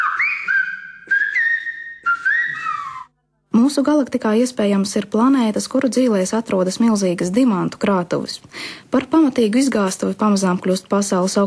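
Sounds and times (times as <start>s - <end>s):
Canary Islands whistled language human whistle: 0.0s - 3.1s
speech: 3.7s - 11.4s.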